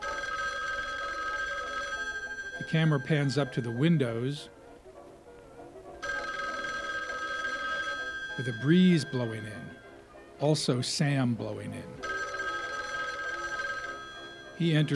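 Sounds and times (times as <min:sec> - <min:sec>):
old-fashioned candlestick telephone bell ringing: 0:00.0 - 0:04.4, 0:06.0 - 0:10.0, 0:11.6 - 0:14.9
speech: 0:02.6 - 0:04.6, 0:08.4 - 0:09.8, 0:10.4 - 0:12.1, 0:14.6 - 0:14.9.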